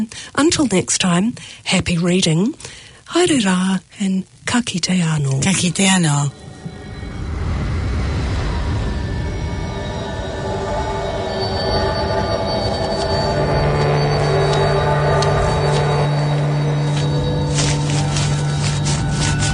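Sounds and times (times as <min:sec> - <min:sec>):
speech: 0:00.0 - 0:06.4
train rumbling past: 0:06.3 - 0:19.5.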